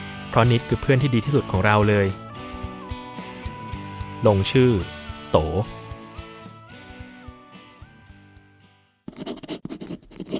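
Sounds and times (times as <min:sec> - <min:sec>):
soft melodic music: 0:00.0 - 0:08.2
speech: 0:00.3 - 0:02.2, 0:04.2 - 0:05.8
pen scratching back and forth across paper: 0:09.1 - 0:10.3.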